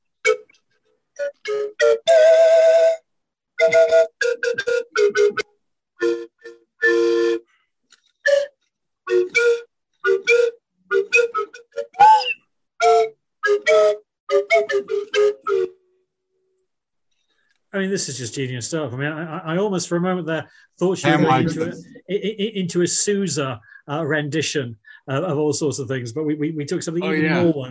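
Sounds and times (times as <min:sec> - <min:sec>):
double slide whistle playing a bouncy melodic tune: 0:01.2 - 0:05.4, 0:06.0 - 0:07.4, 0:08.3 - 0:15.8
speech: 0:18.0 - 0:27.6.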